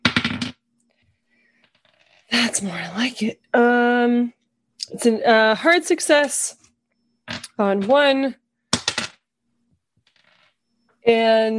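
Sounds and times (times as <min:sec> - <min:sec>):
dice tumbling across a hard table: 0:00.0 - 0:00.6, 0:01.6 - 0:02.2, 0:08.7 - 0:09.2, 0:10.0 - 0:10.5
speech: 0:02.3 - 0:06.6, 0:07.6 - 0:08.4, 0:11.0 - 0:11.5.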